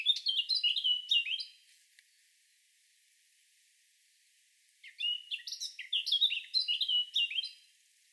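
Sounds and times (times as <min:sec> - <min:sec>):
Eurasian blackcap Sylvia atricapilla singing warbled phrases and fluty notes: 0:00.0 - 0:02.7, 0:04.8 - 0:07.8.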